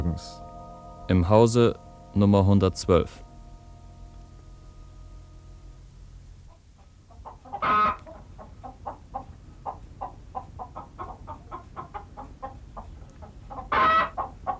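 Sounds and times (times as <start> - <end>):
speech: 0.2 - 0.4, 1.1 - 3.2
hen cackling after laying an egg: 6.5 - 14.5.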